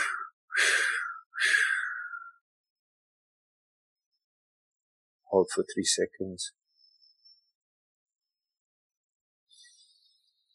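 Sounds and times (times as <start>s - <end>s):
slow airy exhaling breaths during a guided breathing exercise: 0.0s - 2.2s
speech: 5.3s - 6.6s.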